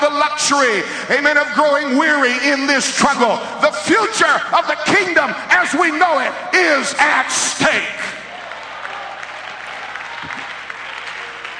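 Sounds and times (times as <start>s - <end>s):
speech: 0.2s - 8.1s
audience clapping in praise: 8.2s - 11.5s.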